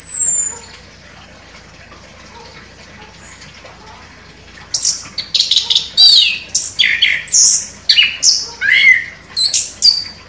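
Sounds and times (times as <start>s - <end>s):
orange-headed thrush singing vigorously with whistles and chirps: 4.8s - 10.2s.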